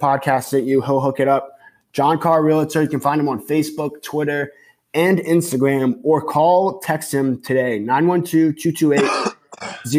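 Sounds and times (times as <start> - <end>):
speech: 0.0 - 9.9
person coughing roughly: 9.0 - 9.9
voiced throat clearing: 9.0 - 9.9.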